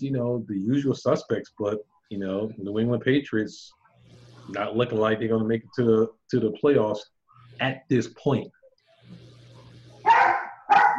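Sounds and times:
speech: 0:00.0 - 0:03.8, 0:04.5 - 0:09.2
dog barking loudly: 0:10.0 - 0:10.9.

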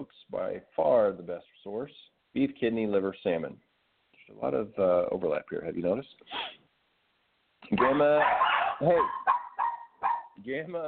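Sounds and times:
speech: 0:00.0 - 0:03.7, 0:04.3 - 0:06.6, 0:07.6 - 0:09.4, 0:10.4 - 0:10.8
dogs barking excitedly: 0:07.8 - 0:10.8.

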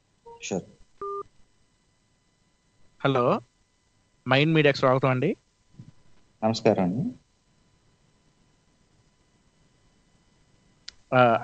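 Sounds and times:
speech: 0:00.4 - 0:00.8, 0:03.0 - 0:03.5, 0:04.2 - 0:05.4, 0:06.4 - 0:07.2, 0:11.1 - 0:11.4
telephone keypad tones dialing a call: 0:01.0 - 0:01.2.

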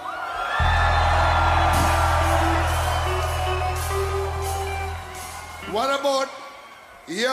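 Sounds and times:
large crowd of young people screaming and whooping: 0:00.0 - 0:07.3
low hum or bass drone: 0:00.6 - 0:05.7
speech: 0:07.1 - 0:07.3.

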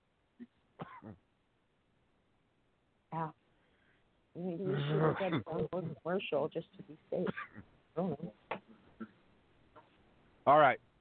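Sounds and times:
person coughing after choking on coffee: 0:00.8 - 0:01.2, 0:04.7 - 0:06.0, 0:07.2 - 0:07.6
speech: 0:04.4 - 0:08.4, 0:10.5 - 0:10.8.

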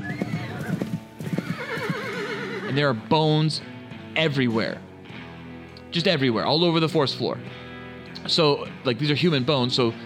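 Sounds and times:
horse hooves clip-clopping: 0:00.0 - 0:02.5
horse whinnying with high-pitched neighs: 0:00.0 - 0:02.8
speech: 0:02.8 - 0:04.9, 0:05.9 - 0:07.6, 0:08.2 - 0:10.0.

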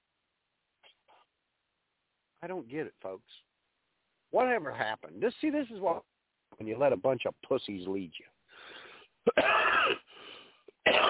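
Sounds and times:
speech: 0:02.4 - 0:03.5, 0:04.3 - 0:08.7
strained wheezing breaths: 0:08.5 - 0:09.2, 0:10.0 - 0:10.8
man in a harsh coughing fit: 0:09.2 - 0:10.1, 0:10.8 - 0:11.0.

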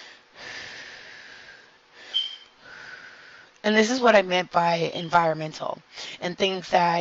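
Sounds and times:
breathing in and out: 0:00.0 - 0:03.6
speech: 0:03.6 - 0:06.9.

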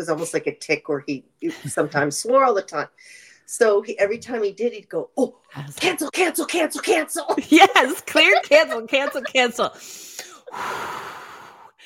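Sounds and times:
speech: 0:00.0 - 0:11.2
laughter: 0:06.4 - 0:09.8
long deep breath with a gasp and airy exhale: 0:09.8 - 0:11.8.

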